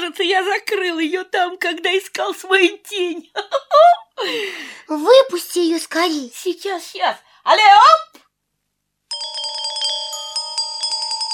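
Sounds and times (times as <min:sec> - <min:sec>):
speech: 0:00.1 - 0:08.2
fairy tinkling and ringing with high bell-like tones: 0:09.1 - 0:11.3.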